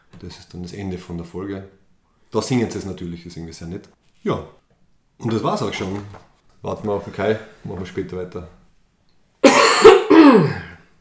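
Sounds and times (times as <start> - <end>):
speech: 0.2 - 4.6, 5.2 - 8.6, 10.3 - 10.7
person coughing: 9.4 - 10.9.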